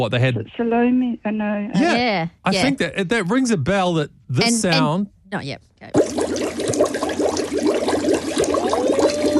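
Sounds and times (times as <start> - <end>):
speech: 0.0 - 6.9
bubbling water from a pool: 5.9 - 9.3.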